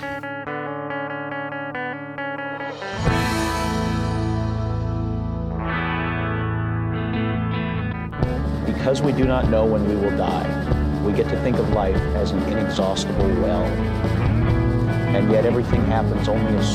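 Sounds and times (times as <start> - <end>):
effected chorus-like guitar tones: 0.0 - 16.7
loud distorted rock band with fuzzy saturated guitar: 0.0 - 16.7
speech: 8.8 - 14.3, 15.1 - 16.7.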